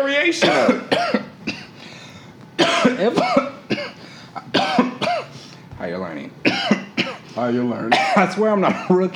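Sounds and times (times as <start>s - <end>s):
speech: 0.0s - 1.1s, 7.5s - 9.1s
harsh coughing: 0.4s - 1.9s, 2.6s - 5.5s, 6.4s - 9.0s.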